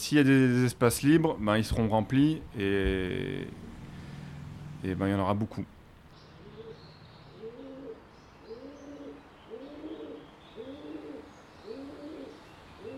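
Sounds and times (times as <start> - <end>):
constant hiss of outdoor noise: 0.0 - 12.9
speech: 0.1 - 3.7, 4.8 - 5.8
pigeons cooing in an urban setting: 6.2 - 12.9.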